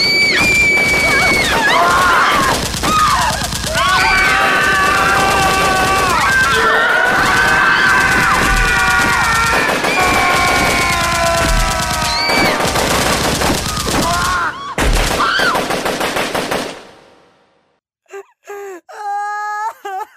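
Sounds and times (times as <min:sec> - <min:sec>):
wailing tones: 0:00.0 - 0:12.7
rapid loud popping crackles: 0:00.0 - 0:16.9.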